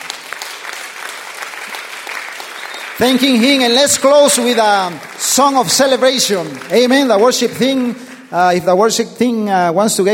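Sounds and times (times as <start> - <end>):
church congregation clapping: 0.0 - 9.0
speech: 3.0 - 10.1.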